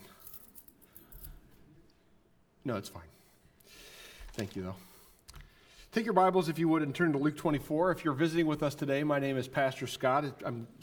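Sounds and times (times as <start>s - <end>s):
keyring jingling as it is unclipped from a belt: 0.0s - 1.6s
speech: 2.6s - 3.2s, 4.4s - 4.9s, 6.0s - 10.8s.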